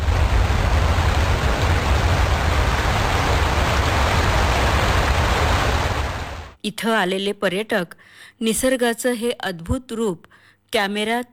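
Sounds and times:
river waterfall on the Pravara crashing down forcefully: 0.0 - 6.6
speech: 6.6 - 11.3.

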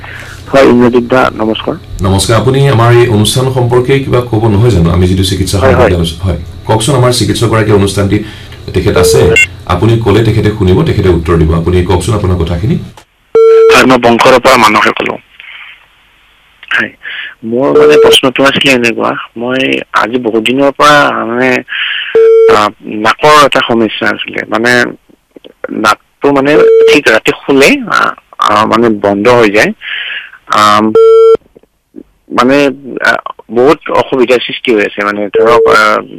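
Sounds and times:
speech: 0.5 - 13.0, 13.8 - 15.4, 16.7 - 25.0, 25.6 - 31.4, 32.3 - 36.1
telephone line beep tones during a phone call: 9.0 - 9.5, 13.4 - 13.8, 17.8 - 18.2, 22.2 - 22.6, 26.6 - 27.0, 31.0 - 31.4, 35.4 - 35.9.

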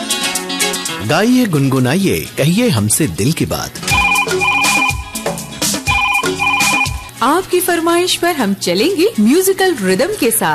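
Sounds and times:
speech: 1.0 - 3.8, 7.2 - 10.5
bright electronic telephone ringtone melody: 3.9 - 7.1.

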